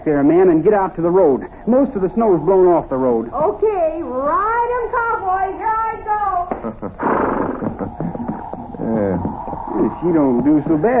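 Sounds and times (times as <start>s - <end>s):
speech: 0.0s - 5.8s, 8.9s - 10.9s
old mare whinnying while acting up: 7.0s - 10.0s.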